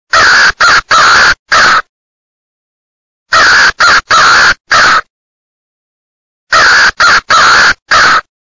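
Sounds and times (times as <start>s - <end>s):
male crow cawing: 0.1s - 1.9s, 3.3s - 5.1s, 6.5s - 8.3s.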